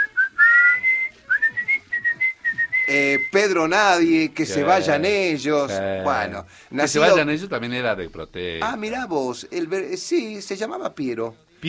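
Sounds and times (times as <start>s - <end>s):
whistled melody of a song intro: 0.0s - 3.4s
speech: 2.9s - 11.6s.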